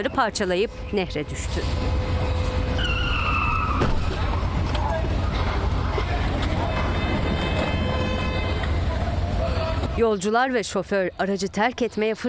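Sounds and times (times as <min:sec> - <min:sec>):
speech: 0:00.0 - 0:02.0, 0:10.0 - 0:12.2
city bus engine rumble: 0:00.0 - 0:11.2
street traffic in Saint Petersburg: 0:00.0 - 0:12.2
city bus tire squeal while skidding in a turn: 0:02.7 - 0:05.0, 0:06.1 - 0:09.9
indistinct voices: 0:04.2 - 0:10.5.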